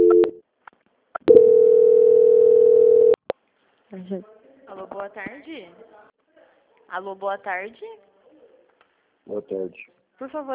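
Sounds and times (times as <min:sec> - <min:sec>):
telephone line tone during a call transfer: 0:00.0 - 0:00.4, 0:01.3 - 0:03.2
speech: 0:04.0 - 0:06.0, 0:06.9 - 0:08.1, 0:09.3 - 0:10.5.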